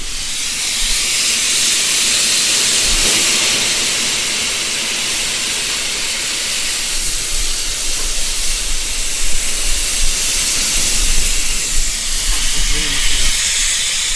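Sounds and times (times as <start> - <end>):
low mechanical rumbling of a steam locomotive: 0.0 - 14.1
steam hissing into a steam locomotive: 0.0 - 14.1.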